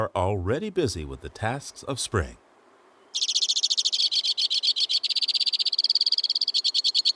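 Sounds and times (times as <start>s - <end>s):
speech: 0.0s - 2.4s
white-winged crossbill singing rapid-fire song: 2.8s - 7.1s.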